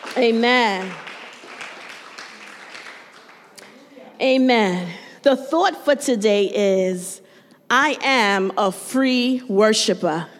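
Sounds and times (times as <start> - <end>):
church audience applauding after a scripture reading: 0.0 - 3.8
speech: 0.2 - 1.0, 4.2 - 10.3.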